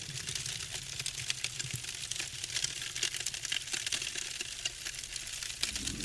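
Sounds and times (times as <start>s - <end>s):
paper offerings burning and crackling: 0.0s - 6.0s
low rumbling hiss of burning paper: 5.4s - 6.0s.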